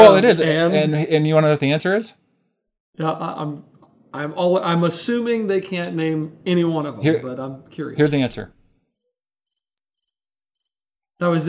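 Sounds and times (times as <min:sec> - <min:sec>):
speech: 0:00.0 - 0:02.2, 0:03.0 - 0:08.6, 0:11.2 - 0:11.4
cricket chirping: 0:08.9 - 0:11.4.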